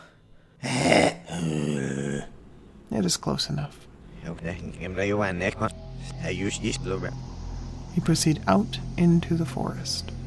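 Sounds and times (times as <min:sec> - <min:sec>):
man's voice growling: 0:00.6 - 0:02.4
speech: 0:03.1 - 0:07.3, 0:07.9 - 0:10.1.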